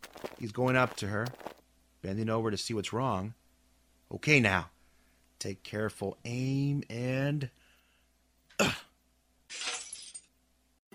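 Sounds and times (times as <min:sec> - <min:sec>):
speech: 0:00.4 - 0:03.4, 0:04.1 - 0:04.8, 0:05.4 - 0:07.6, 0:08.6 - 0:08.8
small glass pellet shattering: 0:09.5 - 0:10.4.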